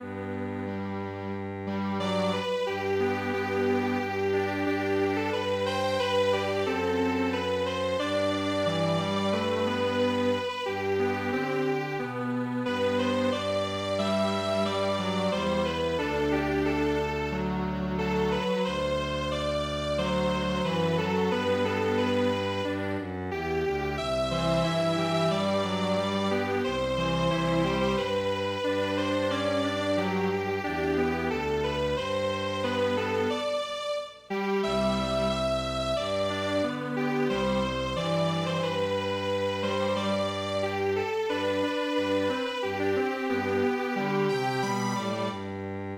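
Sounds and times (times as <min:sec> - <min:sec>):
MIDI string quartet playing a traditional march: 0:00.0 - 0:45.9.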